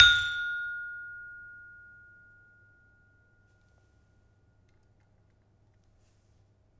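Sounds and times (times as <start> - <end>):
gamelan peking struck hard: 0.0 - 0.6.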